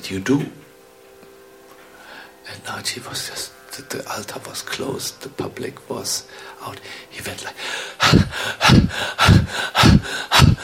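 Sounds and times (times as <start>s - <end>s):
speech: 0.1s - 0.6s, 2.6s - 10.6s
person imitating panting as if out of breath: 7.6s - 10.6s.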